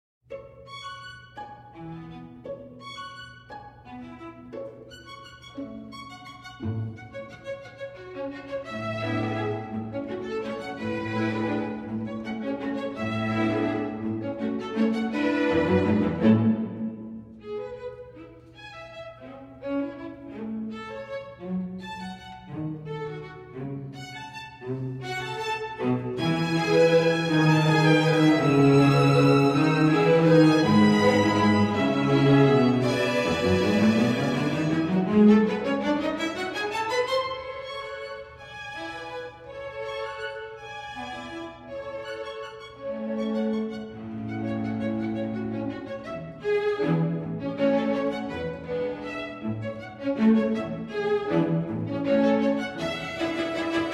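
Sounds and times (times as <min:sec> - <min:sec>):
scherzo played by two violas and cello: 0:00.3 - 0:53.9.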